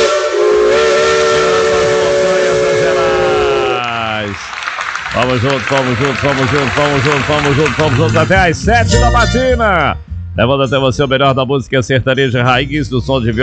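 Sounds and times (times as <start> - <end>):
steam locomotive whistle in the mountains of Minas Gerais Brazil: 0.0 - 3.9
speech: 5.3 - 13.4.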